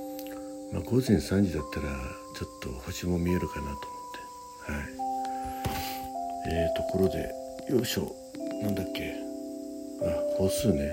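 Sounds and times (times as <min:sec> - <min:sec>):
cicadas chirping outside: 0:00.0 - 0:10.9
soft ambient music with sustained synth-like tones: 0:00.0 - 0:10.9
speech: 0:00.7 - 0:04.0, 0:04.7 - 0:05.0, 0:06.5 - 0:09.2, 0:10.0 - 0:10.9
faint tap: 0:05.2 - 0:05.9.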